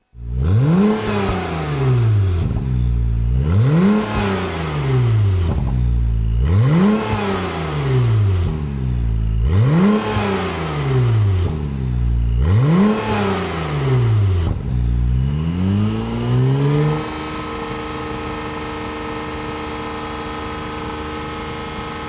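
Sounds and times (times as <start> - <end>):
Honda NSX engine: 0.0 - 22.0.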